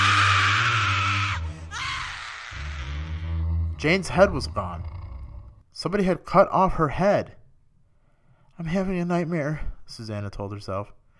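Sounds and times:
girl screaming: 0.0 - 2.8
speech: 3.8 - 5.0, 5.8 - 7.4, 8.6 - 11.0.

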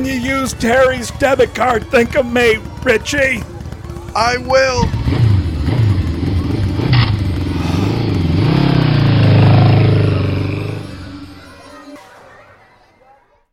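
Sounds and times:
motorcycle engine roar at 65 miles per hour: 0.0 - 11.6
speech: 0.1 - 3.5, 4.2 - 5.3.

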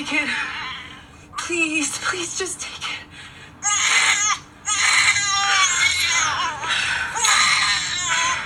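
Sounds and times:
speech: 0.0 - 0.6, 1.5 - 2.9
infant crying sound effect in a film: 3.6 - 8.4.

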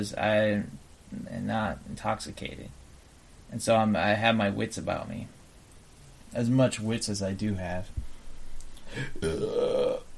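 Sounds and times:
speech: 0.0 - 2.8, 3.5 - 5.4, 6.3 - 8.0, 8.9 - 10.0
long low croaking burp: 9.1 - 10.1.

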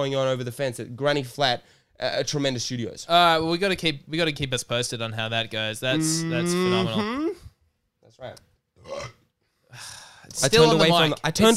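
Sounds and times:
speech: 0.0 - 7.4, 8.1 - 11.5
loud rumbling burp: 8.8 - 9.3.

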